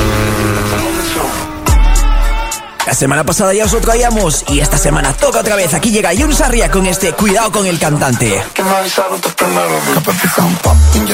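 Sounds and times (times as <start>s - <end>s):
racing car engine roaring and revving: 0.0s - 2.4s
speech: 2.9s - 11.1s.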